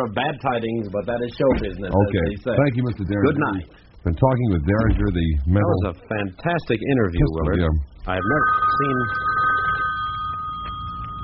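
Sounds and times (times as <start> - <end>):
speech: 0.0 - 9.3
telephone ringing with a steady electronic tone: 8.1 - 11.2.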